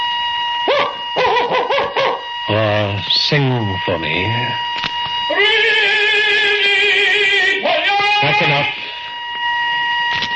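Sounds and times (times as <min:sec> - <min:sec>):
steady electrical hum: 0:00.0 - 0:10.3
person barking like a dog: 0:00.7 - 0:02.2
speech: 0:02.5 - 0:05.8, 0:08.2 - 0:08.8.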